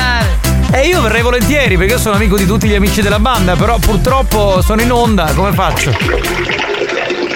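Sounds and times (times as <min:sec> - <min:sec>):
speech: 0:00.8 - 0:06.8
toilet flushing heard over a phone call: 0:05.7 - 0:07.3.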